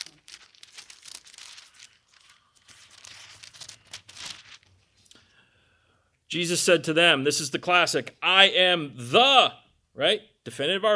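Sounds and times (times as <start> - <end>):
paper pages flipping quickly: 0.0 - 5.2
speech: 6.3 - 10.9.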